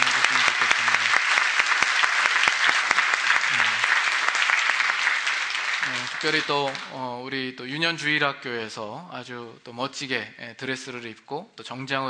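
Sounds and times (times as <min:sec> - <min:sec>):
church congregation applauding the choir: 0:00.0 - 0:07.0
speech: 0:06.2 - 0:12.0.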